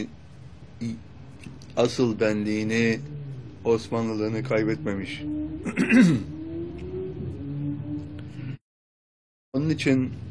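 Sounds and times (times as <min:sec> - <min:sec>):
speech: 0:00.8 - 0:01.1, 0:01.8 - 0:06.3, 0:09.6 - 0:10.2
low strained vocal rumbling: 0:02.3 - 0:06.3
person clearing throat: 0:05.6 - 0:06.4
person coughing harshly: 0:05.7 - 0:06.3.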